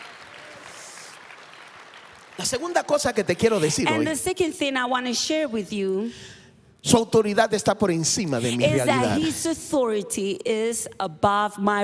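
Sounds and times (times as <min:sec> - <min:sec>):
room full of people applauding: 0:00.0 - 0:03.9
speech: 0:02.4 - 0:11.8.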